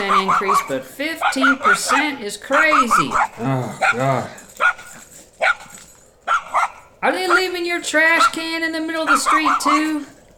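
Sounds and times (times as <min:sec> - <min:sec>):
speech: 0:00.0 - 0:04.8, 0:07.0 - 0:10.2
dog barking excitedly: 0:00.0 - 0:07.5, 0:08.1 - 0:10.3
faint hum: 0:00.0 - 0:10.3.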